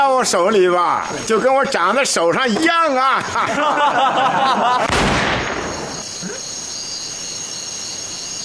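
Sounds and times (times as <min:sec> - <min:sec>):
speech: 0:00.1 - 0:05.2
laughter: 0:01.1 - 0:04.9
Browning pistol accidentally firing: 0:04.8 - 0:06.0.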